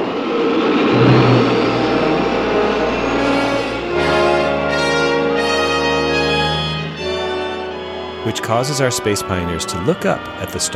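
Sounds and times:
spaceship rocket engines firing: 0:00.1 - 0:07.1
speech: 0:08.4 - 0:10.7.

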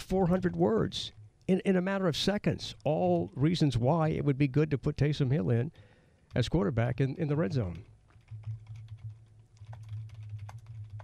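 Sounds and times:
speech: 0:00.1 - 0:07.9
typing on a computer keyboard: 0:07.7 - 0:11.0.

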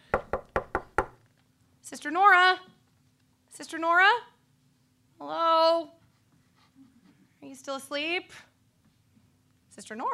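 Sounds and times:
knocking on a wooden door: 0:00.1 - 0:01.2
speech: 0:01.9 - 0:02.8, 0:03.6 - 0:04.3, 0:05.2 - 0:06.0, 0:07.4 - 0:08.5, 0:09.8 - 0:10.1.

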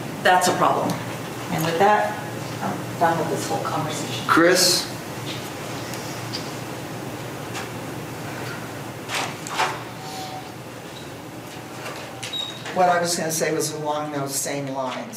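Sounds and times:
steady room hiss: 0:00.0 - 0:15.1
speech: 0:00.2 - 0:04.9, 0:12.8 - 0:15.1
door shutting as a woman leaves a meeting room: 0:08.5 - 0:12.9.

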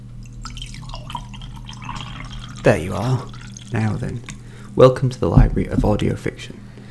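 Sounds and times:
faint low hum: 0:00.0 - 0:06.8
Earl Grey tea pouring into a cup: 0:00.2 - 0:04.8
speech: 0:02.6 - 0:06.6.

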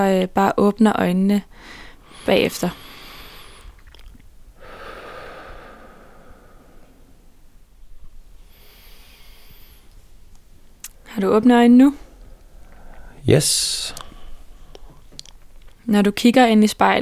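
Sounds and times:
speech: 0:00.0 - 0:02.8, 0:11.2 - 0:12.0, 0:13.2 - 0:14.0, 0:15.9 - 0:17.0
slow deep breaths taken while sitting in a barber's chair: 0:01.5 - 0:03.9, 0:04.5 - 0:10.3, 0:11.9 - 0:15.2.

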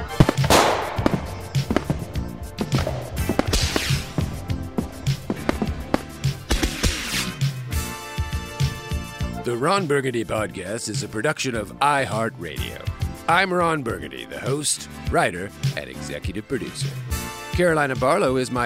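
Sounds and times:
fireworks exploding: 0:00.0 - 0:07.4
speech: 0:09.5 - 0:18.6.

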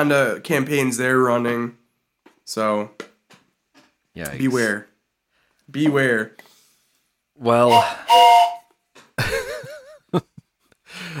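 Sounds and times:
speech: 0:00.0 - 0:01.8, 0:02.5 - 0:03.1, 0:04.2 - 0:04.9, 0:05.7 - 0:06.5, 0:07.4 - 0:08.6
breathy burst: 0:07.7 - 0:08.6
train whistle: 0:07.7 - 0:08.7.

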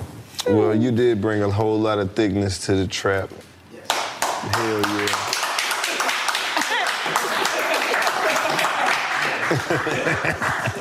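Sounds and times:
speech: 0:00.5 - 0:03.5, 0:04.4 - 0:05.3, 0:09.5 - 0:10.7
small group hand clapping: 0:03.8 - 0:10.7
laughter: 0:06.6 - 0:10.7.

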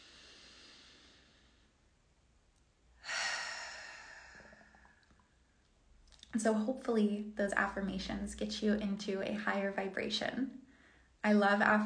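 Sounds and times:
deep breath drawn in during a guided group breathing moment: 0:00.0 - 0:01.8, 0:03.0 - 0:05.2
speech: 0:06.3 - 0:10.6, 0:11.2 - 0:11.8.

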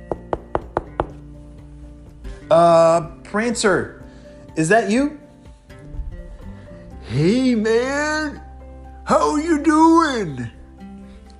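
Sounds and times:
knocking on a wooden door: 0:00.1 - 0:01.2
speech: 0:02.5 - 0:04.0, 0:04.6 - 0:05.2, 0:07.1 - 0:08.4, 0:09.1 - 0:10.6.

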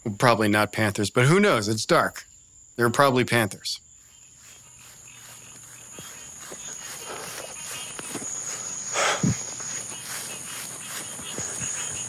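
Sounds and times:
speech: 0:00.0 - 0:03.8
crickets chirping at night in the backwoods: 0:00.0 - 0:12.0
soft footsteps of a runner crunching along a trail: 0:03.9 - 0:12.0.

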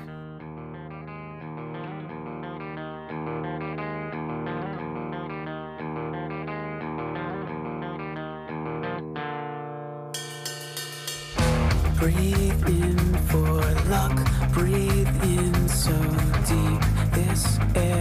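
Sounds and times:
effects-laden electric guitar chords in a mellow rock song intro: 0:00.0 - 0:17.9
cymbals and drums: 0:10.2 - 0:15.0
speech: 0:12.0 - 0:16.0.

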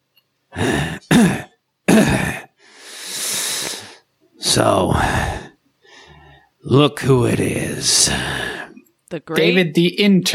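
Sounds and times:
long hoarse wheezing breath drawn in: 0:00.5 - 0:01.1, 0:02.6 - 0:04.0, 0:04.9 - 0:06.5
harsh dry rasping cough: 0:00.6 - 0:02.6
speech: 0:04.5 - 0:05.4, 0:06.7 - 0:10.3.

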